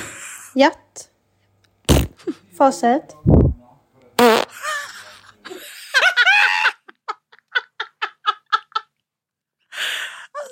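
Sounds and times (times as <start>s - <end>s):
speech: 0.6s - 1.1s, 2.3s - 3.4s
loud sputtering fart: 1.9s - 2.2s, 4.2s - 4.6s
laughter: 4.5s - 8.9s.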